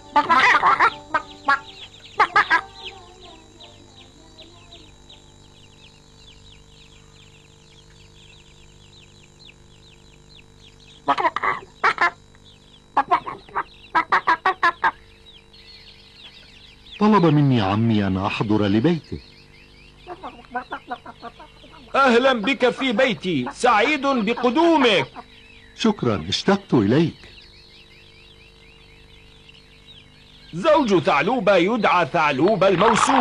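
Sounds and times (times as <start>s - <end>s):
chickens clucking: 0.0s - 6.2s, 10.4s - 33.1s
faint ambient noise: 0.0s - 33.1s
speech: 0.2s - 1.6s, 17.1s - 19.4s, 22.1s - 25.2s, 25.8s - 27.2s, 30.5s - 33.1s.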